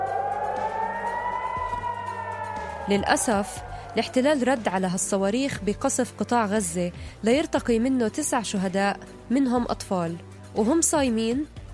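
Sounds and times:
air raid siren wailing in central Jerusalem during a rocket attack: 0.0s - 5.6s
faint low rumbling: 0.0s - 5.7s
speech: 2.9s - 11.7s.

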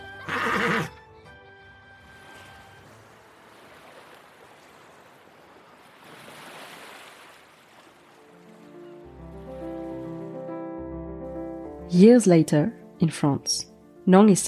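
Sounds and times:
soft tonal music: 0.0s - 4.0s, 8.0s - 14.4s
horse whinnying on a beach: 0.2s - 1.0s
speech: 0.5s - 1.0s, 11.9s - 14.4s
ocean waves washing: 2.0s - 13.5s.

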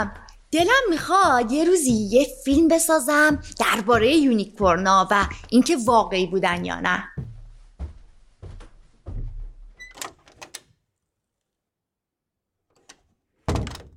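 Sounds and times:
speech: 0.0s - 7.2s
heavy thumps and knocks from a door being handled: 7.2s - 10.6s, 13.4s - 13.9s
sharp door latch clicks: 9.8s - 10.7s, 12.8s - 13.9s.

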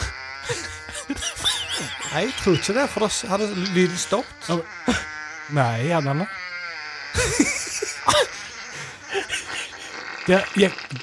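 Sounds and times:
several people coughing: 0.0s - 2.6s, 7.2s - 8.4s
laughter: 0.0s - 5.1s, 7.2s - 10.8s
speech: 0.5s - 1.4s, 2.1s - 6.4s, 10.3s - 11.0s.

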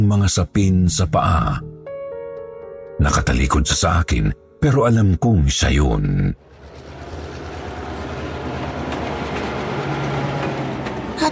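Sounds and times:
speech: 0.1s - 1.7s, 3.0s - 6.5s
faint rattling of light rail train: 6.4s - 11.2s
light rail train arriving at a station with rumbling roar: 6.4s - 11.2s.

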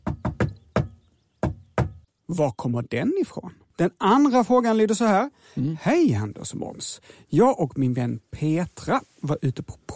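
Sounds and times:
sharp knocks on wood in a secret-code rhythm: 0.0s - 2.1s
speech: 2.3s - 9.9s.

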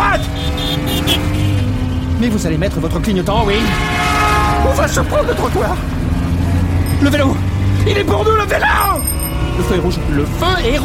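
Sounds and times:
car engine revving and accelerating: 0.0s - 10.8s
speech: 2.2s - 6.2s, 7.0s - 10.8s.

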